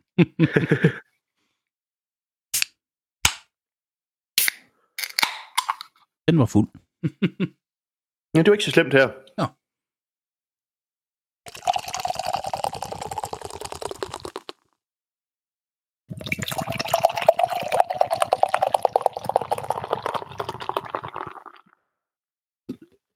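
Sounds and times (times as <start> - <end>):
speech: 0.2 - 1.0, 6.3 - 7.6, 8.3 - 9.6
beer glugging and fizzing poured into a glass: 11.5 - 14.6, 16.1 - 21.8.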